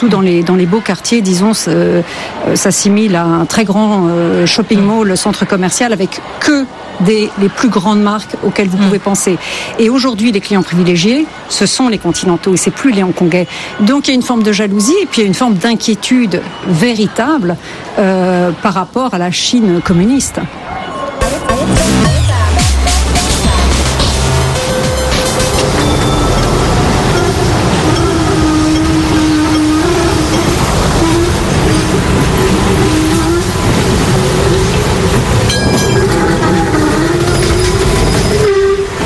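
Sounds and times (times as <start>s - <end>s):
speech: 0.0s - 22.7s
tram running on rails: 0.0s - 39.0s
horn-like tone: 21.2s - 39.0s
metallic squeals of tram on rails: 24.4s - 39.0s.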